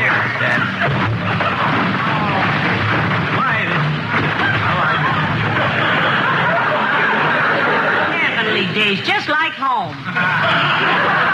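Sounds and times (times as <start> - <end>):
laughter: 0.0 - 9.1, 10.0 - 11.3
crowd murmur: 0.0 - 11.3
voices: 0.0 - 11.3
stacked packages tumbling out of a car's back seat: 0.1 - 6.6.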